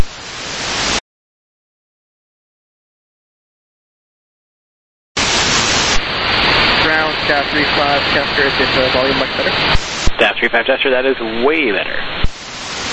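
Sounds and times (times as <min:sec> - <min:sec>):
radio static hiss on an air traffic ground-control channel: 0:00.0 - 0:01.0, 0:05.2 - 0:12.9
speech: 0:07.3 - 0:12.2.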